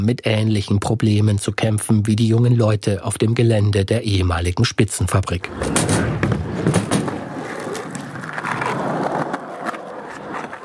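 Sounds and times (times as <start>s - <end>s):
speech: 0.0s - 6.0s
skateboard wheels rolling on concrete at a skatepark: 5.4s - 10.6s.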